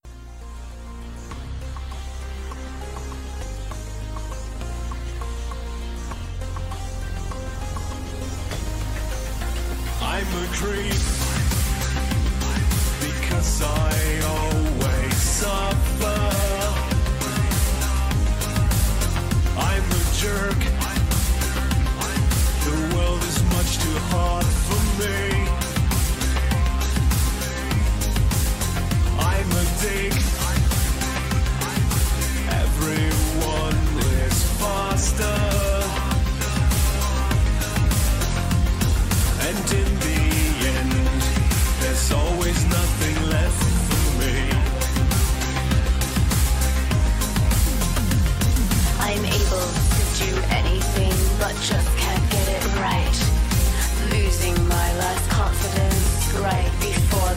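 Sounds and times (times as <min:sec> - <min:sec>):
darkwave electro synthpop industrial synth music: 0:00.0 - 0:57.3.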